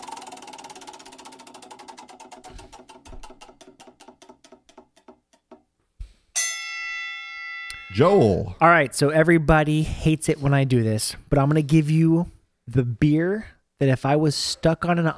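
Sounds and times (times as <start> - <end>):
spinning game wheel clicking: 0.0 - 5.2
bright chime: 6.4 - 8.5
speech: 7.9 - 15.1.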